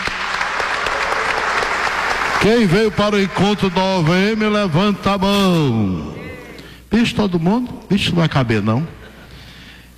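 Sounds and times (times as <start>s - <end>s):
crowd applauding at a meeting: 0.0s - 5.0s
speech: 2.4s - 6.2s, 6.9s - 9.0s.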